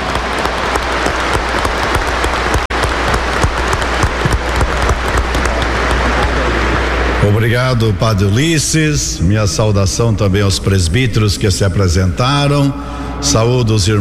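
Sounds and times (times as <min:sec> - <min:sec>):
large audience applauding: 0:00.0 - 0:07.2
speech: 0:07.3 - 0:14.0.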